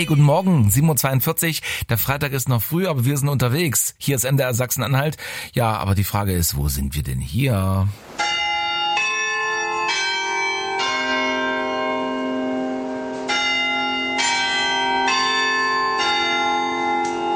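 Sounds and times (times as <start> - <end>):
speech: 0.0 - 8.4
tower bells ringing a chime at a market square in Halle: 8.2 - 17.3.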